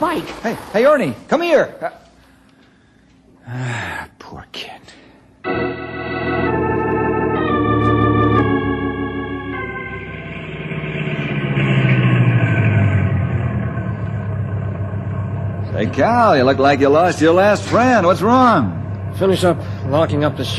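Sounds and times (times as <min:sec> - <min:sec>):
speech: 0:00.0 - 0:02.0, 0:03.5 - 0:03.9, 0:16.0 - 0:20.5
car engine starting up and revving: 0:05.6 - 0:20.5.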